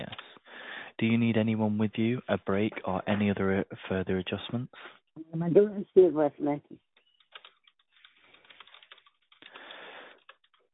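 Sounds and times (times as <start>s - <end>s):
speech: 1.0s - 6.9s
typing notes on a computer keyboard: 7.0s - 10.7s.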